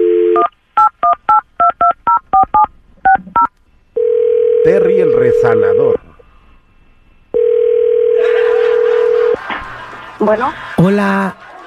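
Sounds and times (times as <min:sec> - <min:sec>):
steady telephone tone: 0:00.0 - 0:01.2, 0:02.1 - 0:06.1, 0:07.3 - 0:09.4
laughter: 0:08.2 - 0:11.6
speech: 0:10.3 - 0:11.5.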